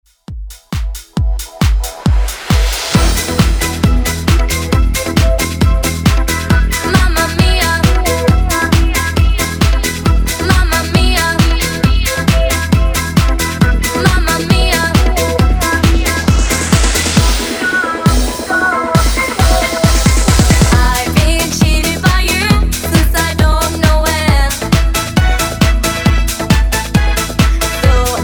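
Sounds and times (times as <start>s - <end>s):
90s pop drum machine beat: 0.0s - 28.2s.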